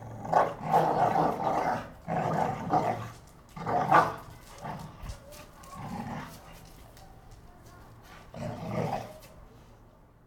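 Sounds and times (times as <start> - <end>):
American Pit Bull Terriers growling and snarling while fighting: 0.0 - 6.6, 8.3 - 9.2.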